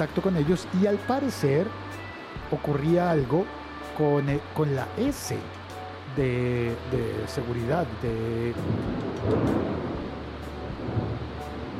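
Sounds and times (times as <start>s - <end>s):
speech: 0.0s - 9.8s
low steady thunder rumbling: 7.9s - 11.7s.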